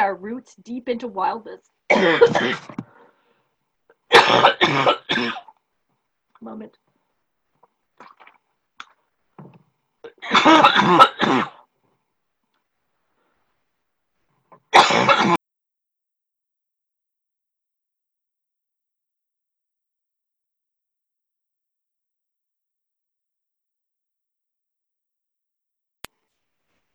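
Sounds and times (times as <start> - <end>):
speech: 0.0 - 2.9, 4.2 - 5.4, 6.4 - 6.8, 10.2 - 11.5
throat clearing: 1.9 - 3.0, 4.1 - 5.6, 9.4 - 11.6, 14.5 - 15.4
harsh coughing fits: 1.9 - 3.1, 4.1 - 5.6, 10.1 - 11.6, 14.7 - 15.4.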